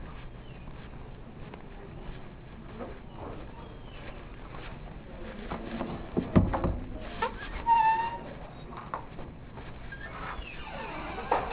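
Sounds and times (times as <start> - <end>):
quiet room noise: 0.0 - 11.5
door opening and closing in a room: 5.8 - 8.7, 10.0 - 11.5.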